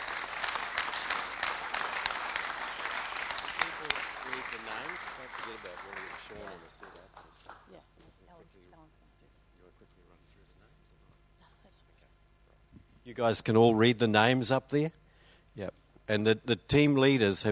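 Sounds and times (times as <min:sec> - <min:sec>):
audience at a morning service applauding the worship team: 0:00.0 - 0:07.7
speech: 0:11.7 - 0:12.2, 0:13.0 - 0:15.0, 0:15.6 - 0:17.4.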